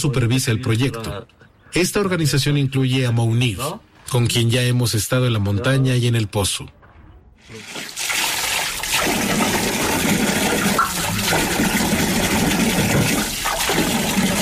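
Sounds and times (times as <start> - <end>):
speech: 0.0 - 6.8
water pouring into a washing machine: 7.5 - 14.4.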